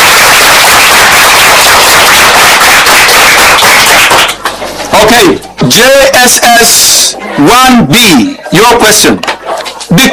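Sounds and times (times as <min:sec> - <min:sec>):
audience applause at a school quiz competition: 0:00.0 - 0:04.7
speech: 0:05.2 - 0:10.1.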